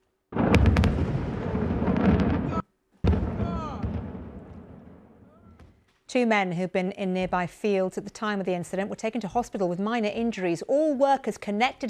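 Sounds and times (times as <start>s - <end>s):
massive fireworks factory explosion in Naxar Malta with crackling pops: 0.3s - 5.9s
heavy boom: 0.4s - 5.6s
speech: 6.1s - 11.8s.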